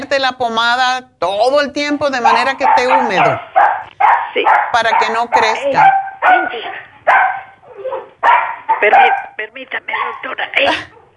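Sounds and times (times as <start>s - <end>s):
speech: 0.1s - 7.3s, 8.2s - 11.0s
dog barking: 2.2s - 11.1s.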